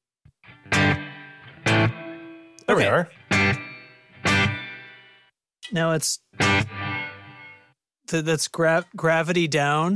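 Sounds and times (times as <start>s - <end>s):
distorted guitar chord strikes with long reverb tail: 0.3s - 5.3s, 6.3s - 7.8s
speech: 2.7s - 3.6s, 5.7s - 6.7s, 8.1s - 9.9s.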